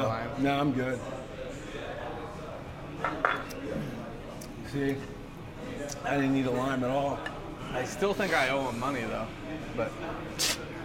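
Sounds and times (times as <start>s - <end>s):
low murmur of room noise: 0.0s - 10.8s
speech: 0.4s - 1.2s, 3.0s - 4.0s, 4.7s - 10.7s
drinking glasses clinking in a toast: 3.0s - 3.6s.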